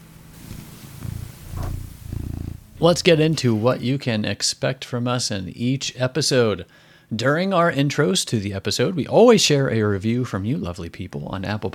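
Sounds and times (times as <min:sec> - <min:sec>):
pet cat purring: 0:00.4 - 0:03.9
speech: 0:02.8 - 0:11.7.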